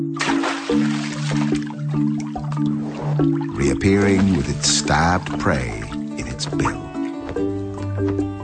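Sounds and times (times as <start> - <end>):
water sloshing and trickling: 0.0 - 8.3
pied kingfisher diving into water at Bung Porapet Lake: 0.1 - 6.0
speech: 3.8 - 5.8, 6.4 - 6.8.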